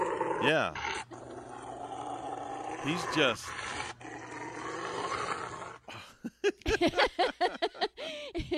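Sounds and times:
Rottweiler growling and snarling while being bathed: 0.0 - 5.9
speech: 0.4 - 1.1, 2.8 - 3.8, 6.4 - 8.5
laughter: 6.1 - 8.5.

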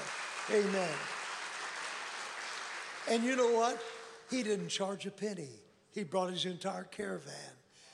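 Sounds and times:
audience clapping: 0.0 - 4.7
speech: 0.5 - 1.2, 3.1 - 7.6.

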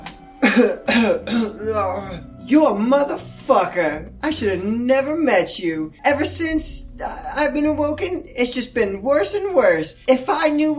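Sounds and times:
harsh raspy coughs: 0.4 - 2.2
speech: 0.6 - 10.7.

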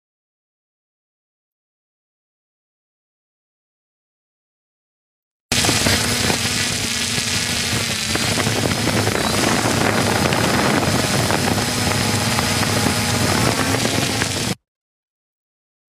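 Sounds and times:
drone propellers buzzing overhead: 5.5 - 14.6.

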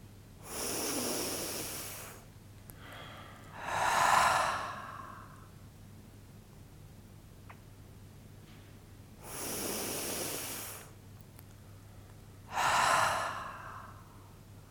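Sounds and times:
slow deep breaths during a guided relaxation exercise: 0.4 - 5.7, 9.2 - 11.0, 11.7 - 14.6.

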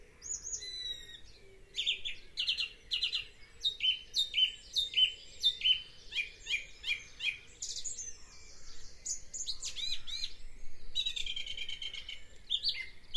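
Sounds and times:
dawn chorus of many birds singing: 0.0 - 13.1.

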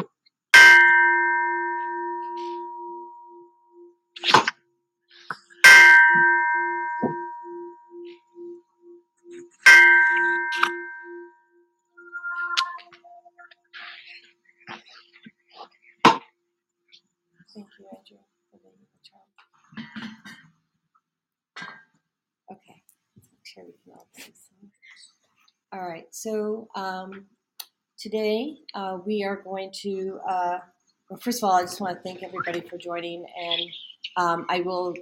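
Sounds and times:
Tibetan bell being struck: 0.6 - 4.0, 5.6 - 13.2
speech: 25.8 - 27.3, 28.0 - 34.9.

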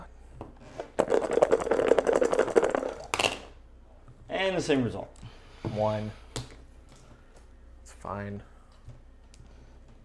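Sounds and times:
dice clattering and tumbling across a hard tabletop: 1.0 - 3.5
speech: 4.5 - 6.2, 8.0 - 8.5.

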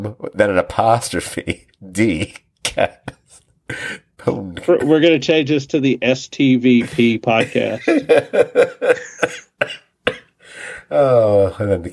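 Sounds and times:
speech: 0.0 - 9.8, 10.9 - 11.9
laughter: 6.8 - 10.2
person coughing harshly: 9.2 - 10.4.

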